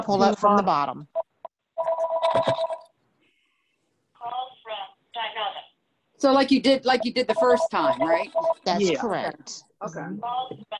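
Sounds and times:
speech: 0:00.0 - 0:01.1, 0:02.3 - 0:02.7, 0:06.2 - 0:10.7
phone ringing with melodic electronic ringtone: 0:01.2 - 0:02.9, 0:07.3 - 0:08.7.

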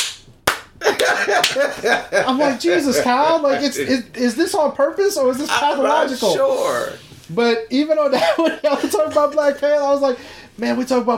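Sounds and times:
hand slapping a table: 0:00.0 - 0:01.6
laughter: 0:00.8 - 0:04.1, 0:08.2 - 0:09.5
speech: 0:01.1 - 0:11.1.

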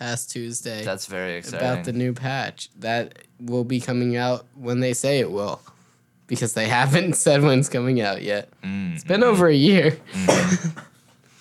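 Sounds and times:
speech: 0:00.0 - 0:10.9
harsh throaty cough: 0:10.1 - 0:11.0.

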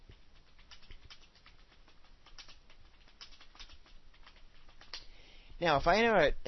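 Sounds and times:
computer keyboard clicks as someone types a message: 0:00.0 - 0:05.1
speech: 0:05.6 - 0:06.4.

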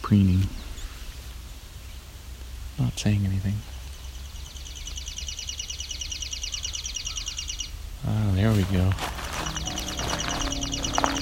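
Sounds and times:
speech: 0:00.1 - 0:00.6, 0:02.8 - 0:03.8, 0:08.0 - 0:09.2
chipping sparrow dry rapid trill: 0:03.7 - 0:07.8, 0:08.4 - 0:11.2.

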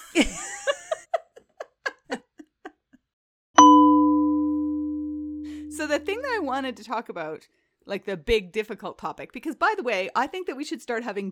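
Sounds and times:
burst of laughter: 0:00.0 - 0:03.1
single loud bright chime: 0:03.6 - 0:06.1
speech: 0:06.0 - 0:11.3.

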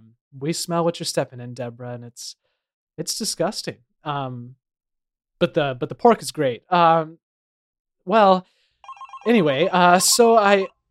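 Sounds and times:
speech: 0:00.4 - 0:04.6, 0:05.4 - 0:07.2, 0:08.0 - 0:08.6, 0:09.2 - 0:10.8
voice imitating a ringing telephone: 0:08.9 - 0:10.7.

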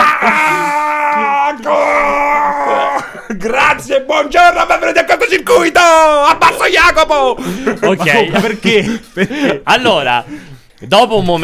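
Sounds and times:
strained drawn-out pained groaning scream: 0:00.0 - 0:03.2
laughter: 0:02.0 - 0:03.8, 0:06.3 - 0:10.1
speech: 0:03.4 - 0:11.4.

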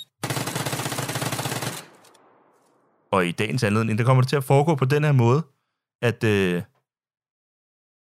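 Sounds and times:
automatic gunfire sound effect: 0:00.2 - 0:02.5
speech: 0:03.2 - 0:06.7.

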